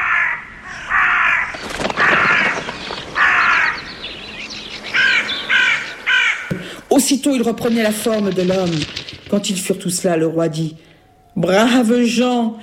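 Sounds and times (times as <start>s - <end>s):
flock of crows cawing: 0.0s - 6.9s
speech: 7.0s - 12.6s.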